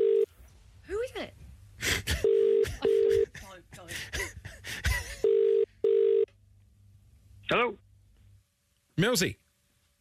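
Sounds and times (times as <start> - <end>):
phone ringing: 0.0 - 0.3, 2.2 - 3.3, 5.2 - 6.3
speech: 9.0 - 9.4.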